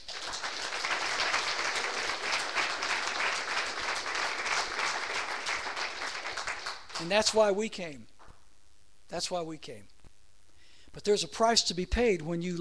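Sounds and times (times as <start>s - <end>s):
crowd clapping: 0.0s - 7.4s
speech: 7.0s - 8.1s, 9.1s - 9.9s, 10.9s - 12.6s.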